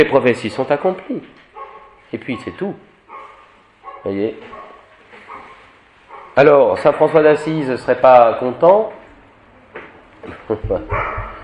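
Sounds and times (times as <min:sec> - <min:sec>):
speech: 0:00.0 - 0:01.4, 0:02.1 - 0:02.9, 0:04.0 - 0:04.6, 0:06.4 - 0:09.0, 0:10.2 - 0:11.4
dog barking and yipping: 0:01.5 - 0:06.4, 0:10.9 - 0:11.4.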